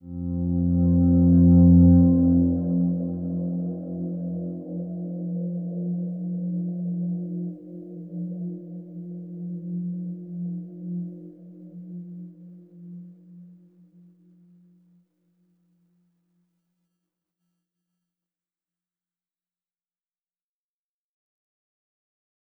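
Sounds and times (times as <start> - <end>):
drone from a video game: 0.0 - 9.2.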